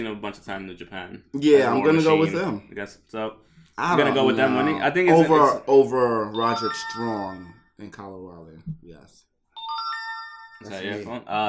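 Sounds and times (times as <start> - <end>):
speech: 0.0 - 9.3, 10.6 - 11.4
short electronic phone notification chime: 6.4 - 7.6, 9.6 - 11.0.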